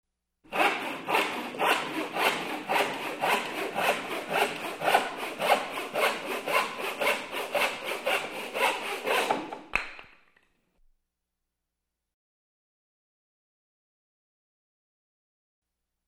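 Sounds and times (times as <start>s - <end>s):
sawing wood: 0.5s - 9.7s.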